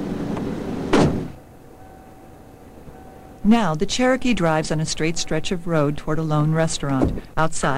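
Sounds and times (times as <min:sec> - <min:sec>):
SUV hood shutting: 0:00.9 - 0:01.4
speech: 0:03.4 - 0:07.7.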